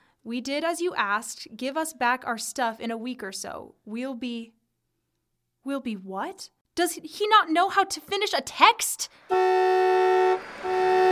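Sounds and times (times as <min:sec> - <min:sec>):
speech: 0:00.2 - 0:04.6, 0:05.6 - 0:10.9
car horn blasts: 0:09.3 - 0:11.0.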